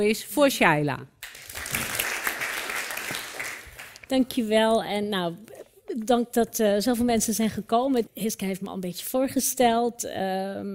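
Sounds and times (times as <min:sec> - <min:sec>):
speech: 0:00.0 - 0:01.2, 0:04.1 - 0:10.7
audience clapping at a book event: 0:01.2 - 0:04.1.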